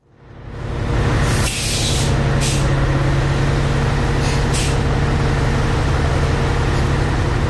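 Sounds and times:
diesel bus engine humming: 0.0s - 7.4s
air releasing hiss from diesel bus: 1.3s - 2.6s.

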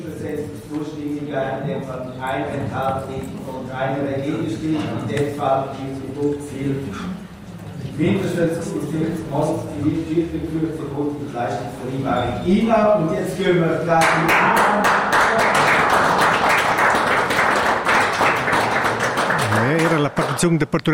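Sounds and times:
speech: 0.0s - 7.2s, 7.9s - 15.5s, 19.6s - 20.9s
audience applauding: 14.0s - 20.9s.

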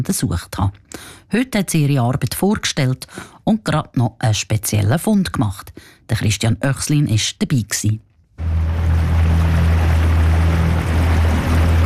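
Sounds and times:
speech: 0.0s - 8.7s
rushing water: 8.4s - 11.8s
small motorboat engine droning on a lake: 8.4s - 11.8s
wind: 8.4s - 11.8s.

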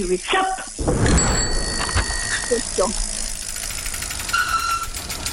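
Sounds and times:
speech: 0.1s - 1.5s, 2.5s - 3.1s
prize wheel spinning with pointer clicking: 1.1s - 5.3s.

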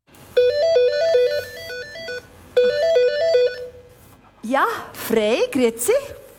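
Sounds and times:
telephone ringing with a warbling electronic melody of stepped tones: 0.4s - 3.8s
speech: 4.6s - 6.2s.

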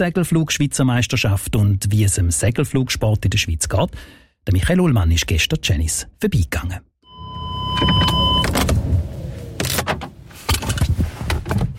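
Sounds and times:
speech: 0.0s - 6.9s
car power window whirring: 7.1s - 10.6s
car engine humming at an airfield in light rain: 7.1s - 10.8s.

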